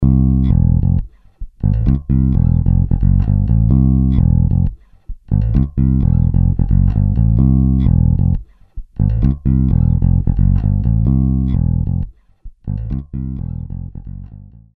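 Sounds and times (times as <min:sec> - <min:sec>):
groovy electric bass: 0:00.0 - 0:08.4, 0:09.0 - 0:14.7.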